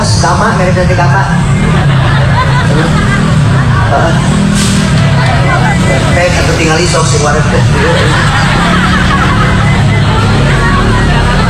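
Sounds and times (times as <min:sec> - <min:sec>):
murmur of voices: 0:00.0 - 0:11.4
other traffic noise: 0:00.0 - 0:11.4
truck passing on a road: 0:00.0 - 0:11.4
speech: 0:00.4 - 0:01.9, 0:03.9 - 0:04.3, 0:05.9 - 0:08.7
laughter: 0:00.7 - 0:11.4.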